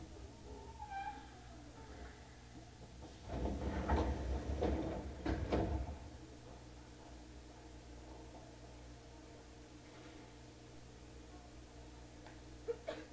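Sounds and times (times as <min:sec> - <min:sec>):
faint squeal from train doors: 0:00.4 - 0:02.3
left side train doors sliding open at Shitennoji-mae Yuhigaoka station: 0:02.9 - 0:06.2.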